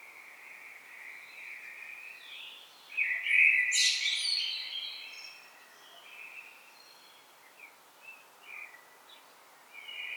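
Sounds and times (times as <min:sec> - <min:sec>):
common blackbird Turdus merula song phrase of fluted warble and twittering: 0:01.1 - 0:09.2.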